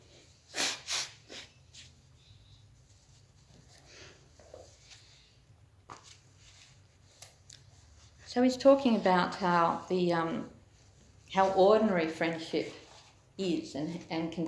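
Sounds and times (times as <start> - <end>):
person blowing nose: 0.4 - 1.7
sniffing: 0.5 - 1.6
speech: 8.4 - 10.6, 11.3 - 12.8, 13.4 - 14.4.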